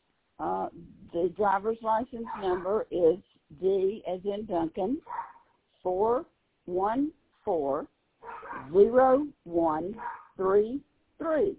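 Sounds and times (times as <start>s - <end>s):
speech: 0.4s - 11.5s
dog howling and barking: 8.2s - 8.8s, 10.0s - 10.4s.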